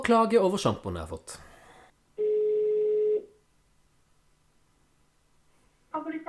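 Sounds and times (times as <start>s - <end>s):
speech: 0.0s - 1.5s
telephone ringing tone of a call placed to a hairdresser: 2.2s - 3.4s.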